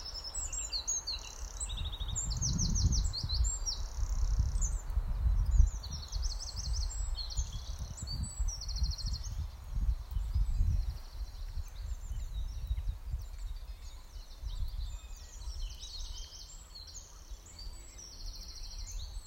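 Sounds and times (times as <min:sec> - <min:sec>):
bird song with high trilled and twittering phrases in a meadow: 0:00.0 - 0:19.2.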